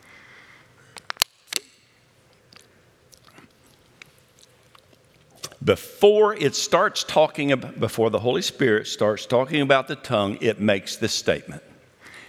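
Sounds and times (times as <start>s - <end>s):
person sipping water: 2.3s - 5.6s
mouth clicks: 2.5s - 5.6s
speech: 5.6s - 11.7s.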